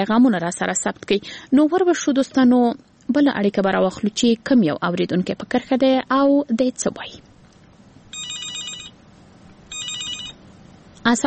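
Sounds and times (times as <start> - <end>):
speech: 0.0 - 7.3, 11.0 - 11.2
faint noise: 0.0 - 11.2
telephone ringing with an incoming call: 8.1 - 9.0, 9.7 - 10.4.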